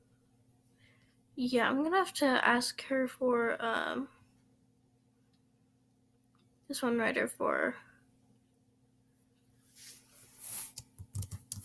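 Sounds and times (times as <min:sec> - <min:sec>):
speech: 0:01.4 - 0:04.2, 0:06.7 - 0:07.9
soft rustle: 0:09.6 - 0:10.8
typing on a computer keyboard: 0:10.8 - 0:11.6.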